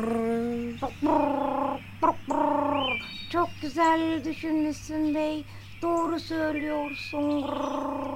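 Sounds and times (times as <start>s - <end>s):
pigeon cooing: 0.0s - 3.2s, 7.2s - 8.1s
speech: 3.6s - 8.1s.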